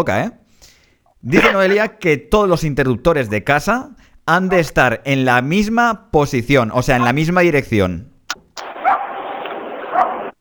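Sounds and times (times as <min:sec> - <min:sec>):
speech: 0:00.0 - 0:00.4, 0:01.2 - 0:08.1
steady hiss: 0:00.1 - 0:10.3
small dog yapping: 0:01.4 - 0:01.8.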